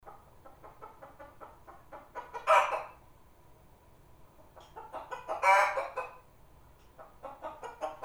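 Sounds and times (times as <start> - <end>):
chicken clucking and squawking: 0.1 - 3.0, 4.5 - 6.3, 7.0 - 8.0.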